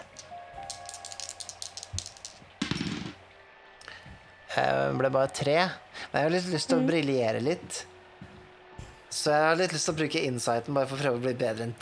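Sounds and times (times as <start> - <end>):
two dice shaken in a hand: 0.0 - 3.2
speech: 4.6 - 7.9, 9.2 - 11.7.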